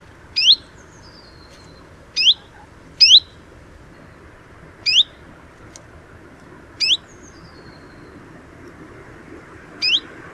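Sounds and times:
common chiffchaff Phylloscopus collybita giving hweet calls: 0.3s - 5.3s, 6.8s - 8.4s, 9.8s - 10.2s.

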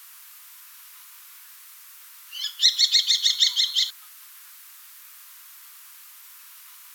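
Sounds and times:
Common kestrel Falco tinnunculus shrill calls: 2.3s - 3.9s.

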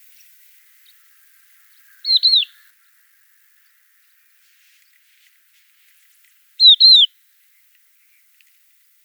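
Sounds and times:
crested lark Galerida cristata fluty slurred calls: 0.8s - 3.0s, 6.6s - 7.1s.

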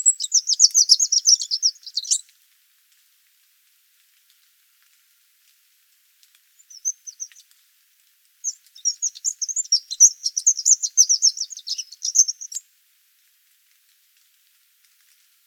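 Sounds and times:
Eurasian wren of nominate subspecies troglodytes singing a fast high trill: 0.0s - 2.2s, 6.6s - 7.4s, 8.4s - 12.6s.

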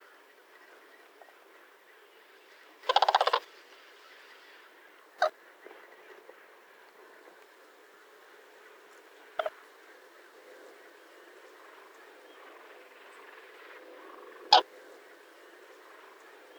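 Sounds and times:
Grus grus crane calling: 2.8s - 3.4s, 8.6s - 16.5s.

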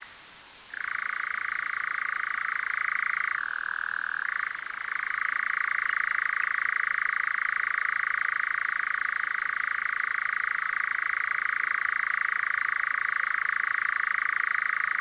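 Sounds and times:
European nightjar Caprimulgus europaeus churring: 0.7s - 15.0s.

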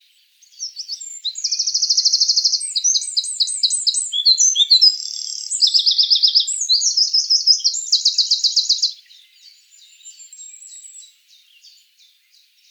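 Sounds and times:
adult male wren Troglodytes troglodytes full song: 0.4s - 11.8s
wren Troglodytes troglodytes call: 0.6s - 9.0s.

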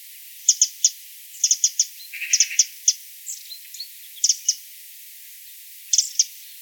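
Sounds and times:
wren Troglodytes troglodytes calling: 0.5s - 4.7s, 5.9s - 6.6s
magpie: 1.4s - 2.7s.

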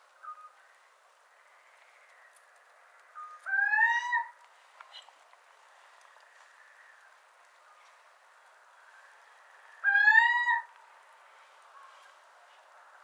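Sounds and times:
little owl Athene noctua mewing calls: 9.8s - 10.7s.

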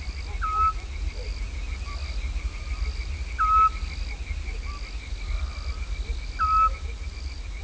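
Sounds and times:
crickets chirping: 0.0s - 7.6s
possibly male scops owl Otus scops calling: 0.1s - 7.0s
amphibian calls: 0.2s - 2.8s, 3.4s - 6.9s.

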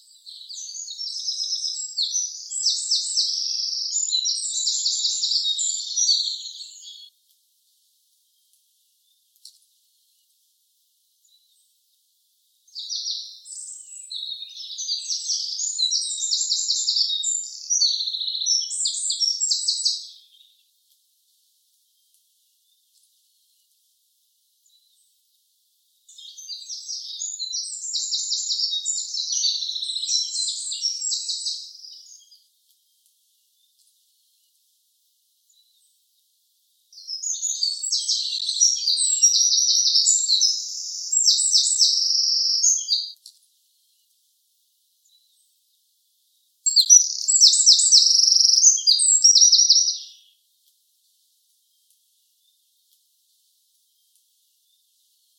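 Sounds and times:
Troglodytes troglodytes wren calling: 0.0s - 7.1s, 12.7s - 20.5s, 26.1s - 32.4s, 36.9s - 43.3s, 46.7s - 50.3s.

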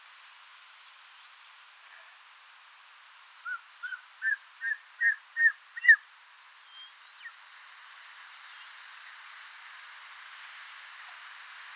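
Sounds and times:
Short-toed snake eagle calling: 3.5s - 6.0s.

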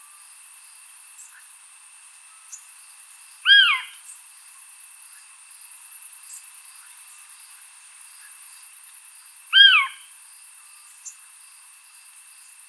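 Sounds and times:
Eurasian scops owl soft downward-curving piping note: 3.5s - 4.0s, 9.5s - 10.0s.

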